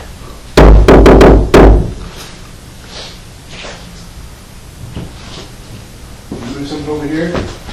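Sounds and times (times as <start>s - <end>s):
knocking: 0.6s - 2.0s.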